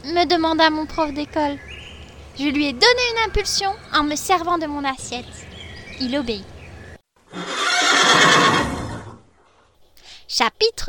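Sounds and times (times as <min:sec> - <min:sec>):
speech: 0:00.0 - 0:01.7, 0:02.4 - 0:05.4, 0:06.0 - 0:06.5, 0:10.4 - 0:10.8
pony neighing in a long loud whinny: 0:07.3 - 0:09.3.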